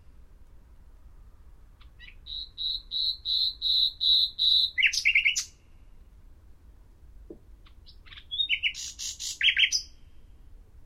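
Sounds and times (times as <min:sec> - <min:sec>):
Common nightingale Luscinia megarhynchos song: 0:01.8 - 0:06.1, 0:07.3 - 0:10.5.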